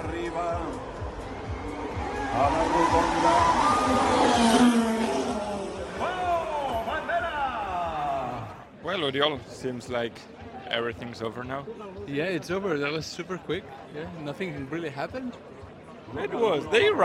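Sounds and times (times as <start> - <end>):
noisy crowd: 0.0 - 17.0
Formula One race car engine screaming and revving: 1.7 - 6.4
speech: 9.0 - 15.5, 16.1 - 17.0.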